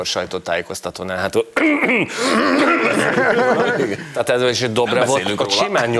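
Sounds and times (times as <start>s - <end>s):
speech: 0.0s - 5.9s
loud gravelly throat clearing and hawking: 1.6s - 2.9s
laughter: 2.2s - 4.2s.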